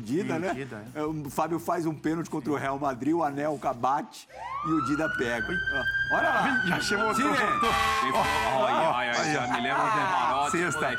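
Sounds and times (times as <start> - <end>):
speech: 0.0 - 10.9
short siren blast with wavering wail: 4.3 - 10.9
laughter: 7.5 - 10.9.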